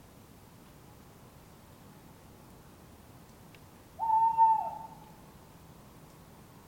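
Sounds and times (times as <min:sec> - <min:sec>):
tawny owls calling in an urban setting in Surrey England: 0:04.0 - 0:05.2.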